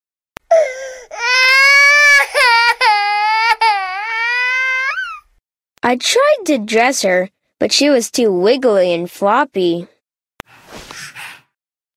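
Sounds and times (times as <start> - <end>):
baby's sharp catches of breath: 0.5 - 1.2, 10.5 - 11.6
baby wailing loudly: 0.5 - 5.3
speech: 5.9 - 10.0.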